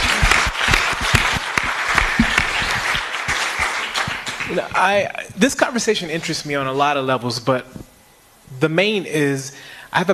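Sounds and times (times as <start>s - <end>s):
audience at a panel discussion applauding: 0.0s - 5.1s
speech: 4.8s - 7.9s, 8.6s - 10.1s.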